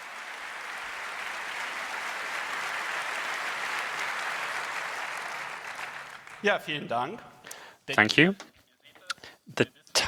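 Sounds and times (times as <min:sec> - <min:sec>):
crowd applauding presenters being introduced: 0:00.0 - 0:06.8
speech: 0:06.4 - 0:07.3, 0:07.9 - 0:08.5, 0:09.5 - 0:10.0.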